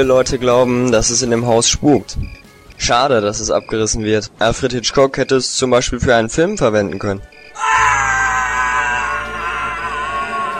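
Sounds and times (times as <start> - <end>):
speech: 0.0 - 7.8
person screaming: 7.6 - 10.5.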